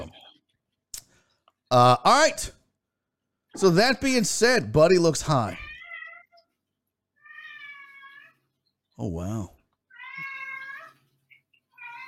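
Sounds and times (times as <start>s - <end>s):
speech: 1.7s - 2.6s, 3.6s - 5.6s, 9.0s - 9.6s
pet cat meowing: 5.5s - 6.5s, 7.2s - 8.4s, 9.9s - 11.1s, 11.7s - 12.0s.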